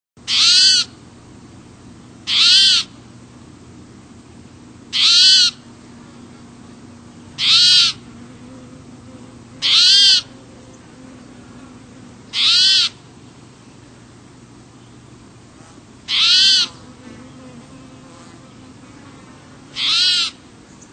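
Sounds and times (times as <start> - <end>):
spotted towhee calling: 0.2 - 1.0, 2.2 - 3.0, 4.9 - 13.2, 14.7 - 20.9.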